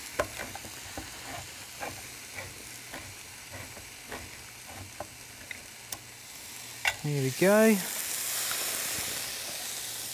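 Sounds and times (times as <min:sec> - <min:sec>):
tomatoes and spices sizzling in a hot pan: 0:00.0 - 0:10.1
spoon scraping a hot pan while stirring wet food: 0:00.2 - 0:05.1
speech: 0:07.0 - 0:08.0.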